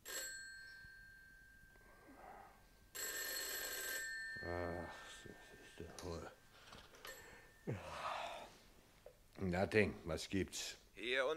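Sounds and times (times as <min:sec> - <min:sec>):
telephone bell ringing at midnight: 0:00.0 - 0:01.8, 0:02.9 - 0:05.8
speech: 0:04.5 - 0:06.4, 0:07.6 - 0:08.0, 0:09.4 - 0:11.3.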